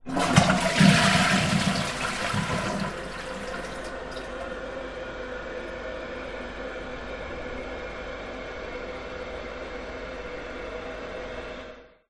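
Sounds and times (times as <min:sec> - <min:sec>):
household toilet flush with lid closed: 0:00.0 - 0:04.5.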